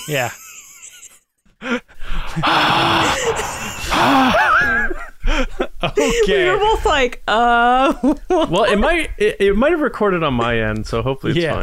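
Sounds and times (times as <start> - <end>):
speech: 0.1 - 0.4, 2.4 - 3.4, 5.6 - 11.6
voice imitating heavy rasping breathing behind a mask: 1.6 - 4.5
laughter: 2.1 - 6.5.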